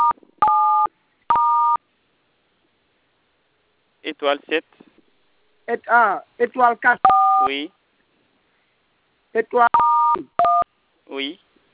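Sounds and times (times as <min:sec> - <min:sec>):
electronic telephone keypad DTMF tones: 0:00.0 - 0:01.8, 0:07.1 - 0:07.5, 0:09.7 - 0:10.7
speech: 0:04.1 - 0:04.9, 0:05.7 - 0:07.8, 0:09.3 - 0:10.3, 0:11.1 - 0:11.5.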